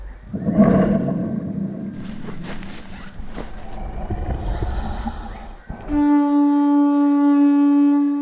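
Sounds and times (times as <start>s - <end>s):
steady sustained droning blast: 0.0s - 8.2s
lion roaring while walking in circles: 0.3s - 6.2s.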